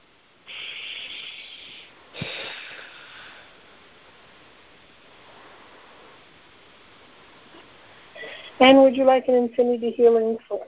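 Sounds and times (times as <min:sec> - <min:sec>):
slow deep breaths during a guided healing session: 0:00.4 - 0:04.0, 0:05.1 - 0:06.4, 0:07.9 - 0:08.6
speech: 0:08.6 - 0:10.6.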